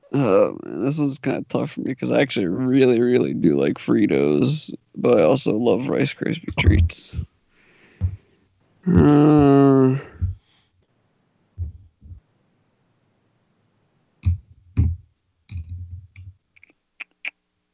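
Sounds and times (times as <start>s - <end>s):
speech: 0.2s - 7.3s, 8.8s - 10.3s
person humming: 8.8s - 10.4s
tongue clicks: 15.5s - 17.4s.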